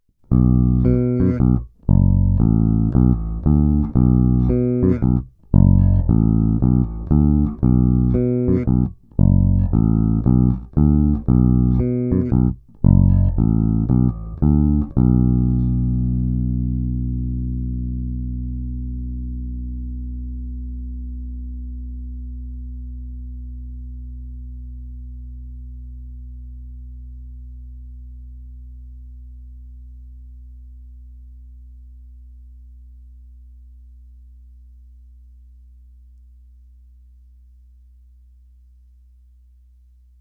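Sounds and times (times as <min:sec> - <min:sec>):
Fender Blacktop Precision Bass with both humbucker pickups: 0:00.2 - 0:34.8.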